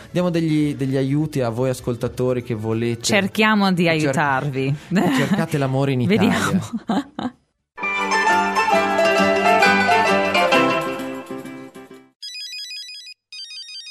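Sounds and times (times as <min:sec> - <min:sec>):
speech: 0:00.1 - 0:07.4
laughter: 0:05.0 - 0:07.4
loud dense music: 0:07.8 - 0:11.8
mobile phone ringtone: 0:12.2 - 0:13.8.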